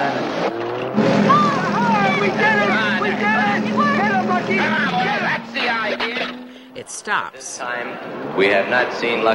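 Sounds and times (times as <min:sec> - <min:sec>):
Ferrari sports car engine roaring while peeling out of a shop: 0:00.0 - 0:09.3
high squealing tones: 0:01.0 - 0:07.1
murmur of voices: 0:01.0 - 0:09.3
speech: 0:07.1 - 0:09.3.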